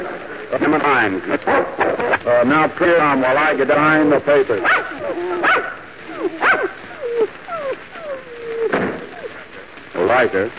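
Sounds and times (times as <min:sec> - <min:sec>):
speech: 0:00.5 - 0:05.8, 0:10.2 - 0:10.5
several dogs barking and baying: 0:01.3 - 0:02.3, 0:04.6 - 0:09.7.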